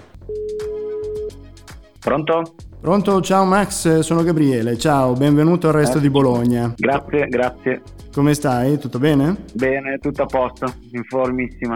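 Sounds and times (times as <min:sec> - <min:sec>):
quiet music with soft percussive beats: 0:00.0 - 0:11.7
ringback tone of an outgoing call: 0:00.3 - 0:01.4
speech: 0:02.0 - 0:11.7.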